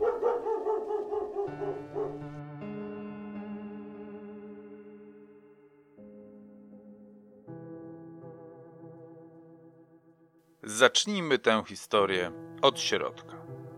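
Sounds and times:
dogs barking and yipping: 0.0 - 2.4
speech: 10.7 - 13.3.

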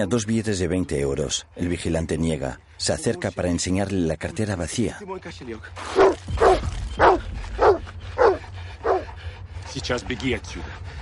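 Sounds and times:
speech: 0.0 - 6.4, 9.8 - 11.0
guard dog barking during a chase: 6.0 - 9.1.

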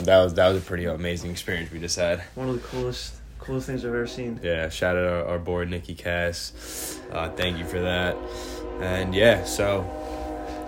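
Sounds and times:
speech: 0.0 - 10.2
passing train low rumble: 1.2 - 10.6
passing train horn-like tone: 3.4 - 10.6.

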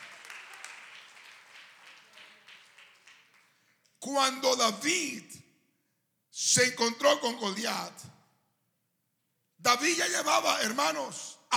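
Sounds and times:
crowd applauding: 0.0 - 3.7
speech: 4.1 - 5.4, 6.4 - 8.1, 9.6 - 11.5.

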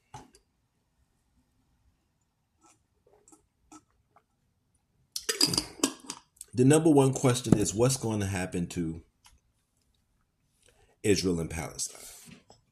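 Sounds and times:
glass clinking: 5.2 - 6.2
speech: 6.6 - 9.1, 11.0 - 12.4.

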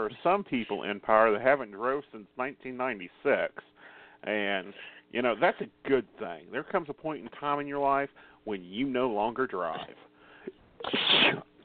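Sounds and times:
speech: 0.0 - 11.5
person sneezing: 10.8 - 11.5.

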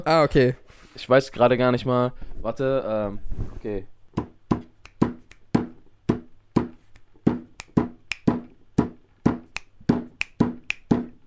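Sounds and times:
speech: 0.0 - 3.9
hand taps and claps tapping out a song rhythm: 4.2 - 11.2.

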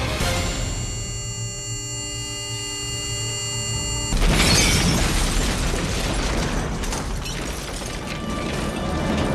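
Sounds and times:
steady humming electronic tone: 0.2 - 4.3
loud explosion: 4.2 - 9.2.

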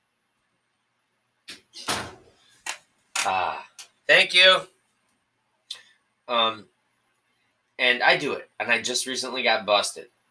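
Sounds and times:
door swinging shut and latching: 1.8 - 2.2
speech: 3.3 - 4.7, 6.3 - 6.7, 7.8 - 10.2.

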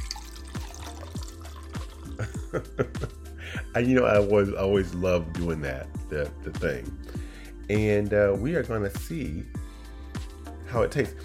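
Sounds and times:
liquid pouring from a bottle into a glass: 0.0 - 2.4
speech: 2.2 - 7.1, 7.7 - 9.6, 10.7 - 11.2.

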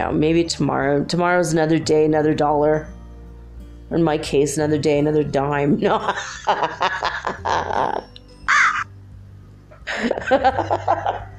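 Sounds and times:
speech: 0.0 - 3.0, 3.9 - 7.1, 10.3 - 11.3
laughter: 5.9 - 8.8, 9.9 - 11.3
crows cawing: 8.5 - 8.9.

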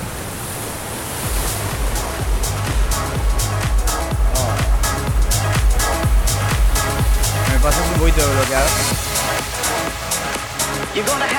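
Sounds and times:
strong wind: 0.0 - 7.3
ocean surf with many waves: 0.0 - 11.3
speech: 8.1 - 8.9, 9.5 - 11.3.

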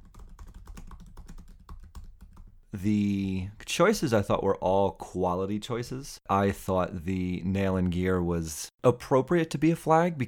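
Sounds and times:
typing on a computer keyboard: 0.0 - 2.6
speech: 2.7 - 10.2.

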